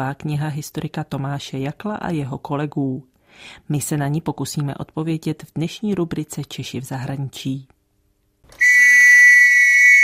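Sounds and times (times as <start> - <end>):
speech: 0.0 - 7.8
shrill blast from a First World War era whistle: 8.6 - 10.0.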